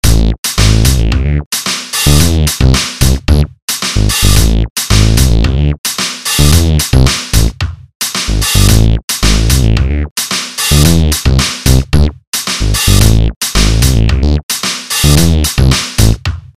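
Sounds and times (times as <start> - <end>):
micromono megabass synthesizers: 0.0 - 1.4, 2.0 - 5.8, 6.4 - 7.5, 8.3 - 10.1, 10.7 - 14.4, 15.0 - 16.2.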